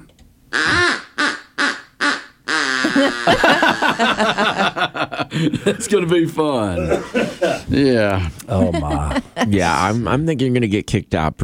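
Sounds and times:
duck call blown in imitation of an evil duck: 0.5s - 4.1s
laughter: 2.8s - 10.2s
speech: 3.0s - 4.7s, 5.3s - 11.4s.

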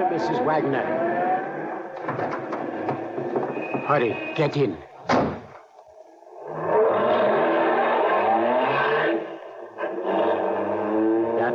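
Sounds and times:
speech: 0.0s - 1.1s, 3.9s - 5.3s
car engine revving and accelerating: 0.0s - 3.4s, 6.3s - 11.5s.

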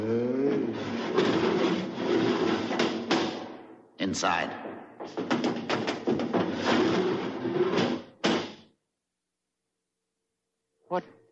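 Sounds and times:
heavy door grinding open: 0.6s - 3.5s, 4.6s - 8.6s
speech: 4.1s - 5.3s.

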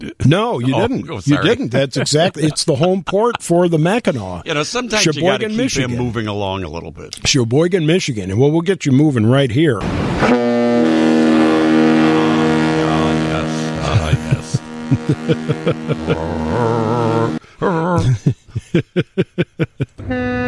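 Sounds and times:
chuckling laughter: 0.0s - 3.6s, 13.8s - 20.0s
speech: 0.0s - 10.5s, 14.9s - 16.9s, 17.6s - 20.4s
deep boat horn on a lake: 10.2s - 17.4s.

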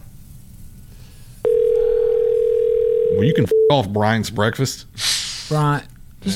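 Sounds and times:
telephone line tone: 1.5s - 3.8s
speech: 3.2s - 6.3s.

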